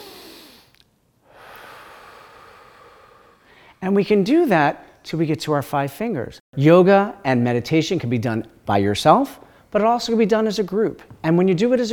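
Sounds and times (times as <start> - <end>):
person breathing in deeply during a yoga breathing exercise: 0.0 - 3.8
speech: 3.8 - 11.9.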